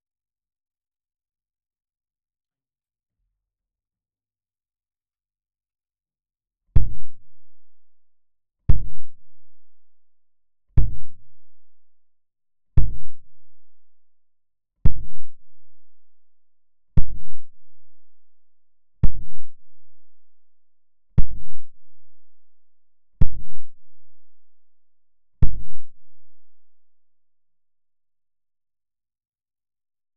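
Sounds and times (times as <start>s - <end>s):
kick pad: 6.8s - 7.3s, 8.7s - 9.2s, 10.8s - 11.4s, 12.8s - 13.3s, 14.8s - 15.5s, 17.0s - 17.6s, 19.0s - 19.6s, 21.2s - 21.8s, 23.2s - 23.8s, 25.4s - 26.0s
close-miked kick drum: 6.8s - 7.6s, 8.7s - 9.6s, 10.8s - 11.6s, 12.8s - 13.7s, 14.8s - 16.1s, 17.0s - 18.2s, 19.0s - 20.2s, 21.2s - 22.4s, 23.2s - 24.4s, 25.4s - 26.6s.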